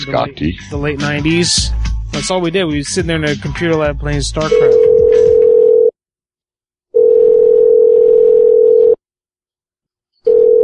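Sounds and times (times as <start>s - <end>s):
speech: 0.0s - 5.3s
telephone tone after a handset is picked up: 4.5s - 6.0s, 6.9s - 9.0s, 10.2s - 10.6s.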